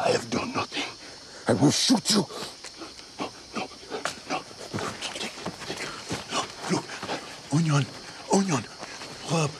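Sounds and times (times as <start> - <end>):
speech: 1.5 - 2.5, 7.6 - 9.5
dogs panting: 2.7 - 9.0.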